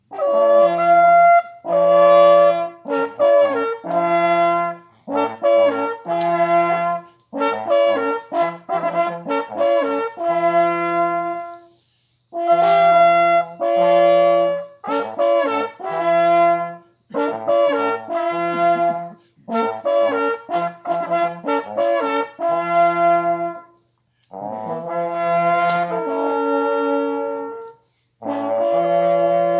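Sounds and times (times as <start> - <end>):
hunting horn call: 0.0 - 29.5.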